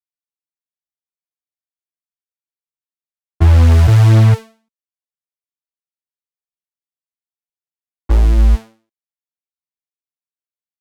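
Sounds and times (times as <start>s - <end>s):
bass: 3.4s - 4.4s, 8.1s - 8.6s.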